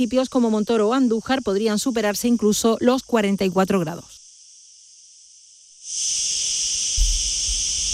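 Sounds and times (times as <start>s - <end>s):
speech: 0.0s - 4.2s
cicada chirring: 0.0s - 7.9s.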